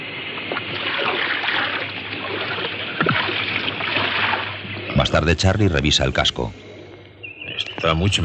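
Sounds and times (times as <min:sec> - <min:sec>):
water splashing as people bail out a moored boat: 0:00.0 - 0:06.2
steady watery rush: 0:00.0 - 0:06.9
speech: 0:05.1 - 0:06.6, 0:07.8 - 0:08.2.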